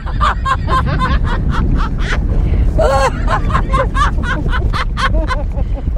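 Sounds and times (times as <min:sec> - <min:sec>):
wind roar buffeting the microphone: 0:00.0 - 0:05.9
woman laughing and squealing: 0:00.0 - 0:05.9.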